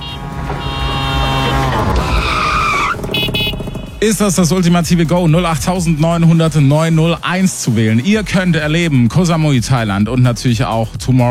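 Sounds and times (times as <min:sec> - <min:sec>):
tires squealing in a skid: 0:00.0 - 0:03.8
loud steady drone of a tuk-tuk engine: 0:00.0 - 0:06.9
speech: 0:04.0 - 0:11.2.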